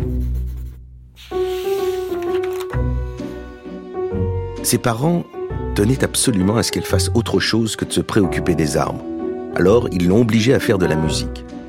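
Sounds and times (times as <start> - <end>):
pencil writing and drawing on paper: 0.0 - 2.4
speech: 4.6 - 11.5.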